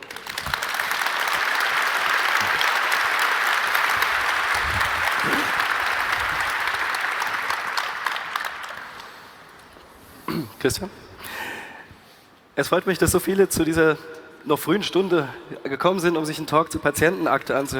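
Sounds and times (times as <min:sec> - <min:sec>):
audience applause: 0:00.0 - 0:09.8
speech: 0:10.6 - 0:11.0, 0:12.6 - 0:17.7.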